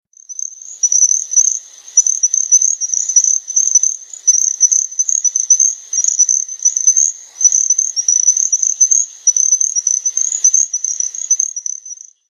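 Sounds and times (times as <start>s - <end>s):
little grass frog calling in North Carolina: 0.2s - 12.2s.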